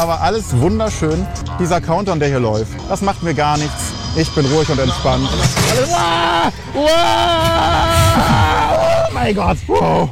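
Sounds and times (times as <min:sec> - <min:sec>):
speech: 0:00.0 - 0:08.6, 0:09.2 - 0:10.1
person screaming on a fairground drop ride: 0:05.8 - 0:10.1.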